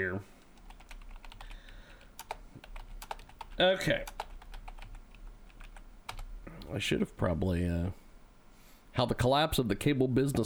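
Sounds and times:
speech: 0.0s - 0.4s, 3.6s - 4.2s, 6.7s - 8.0s, 9.0s - 10.4s
typing a search on a computer keyboard: 0.5s - 6.3s.

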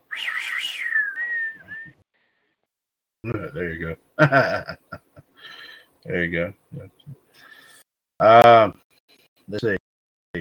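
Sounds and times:
person whistling a western film theme: 0.1s - 2.0s
speech: 3.2s - 5.0s, 6.0s - 7.2s, 8.2s - 8.8s, 9.5s - 9.8s.

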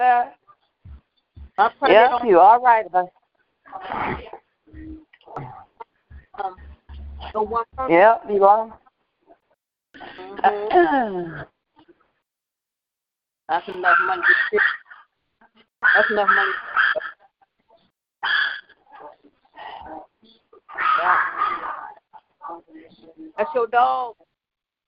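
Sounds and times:
speech: 0.0s - 0.4s, 1.6s - 4.3s, 6.4s - 8.8s, 10.0s - 11.5s, 13.5s - 14.8s, 15.8s - 17.1s, 22.5s - 24.3s
dog barking at a house with high-pitched yaps: 13.8s - 15.1s, 15.8s - 17.2s, 18.2s - 19.2s, 20.7s - 22.0s.

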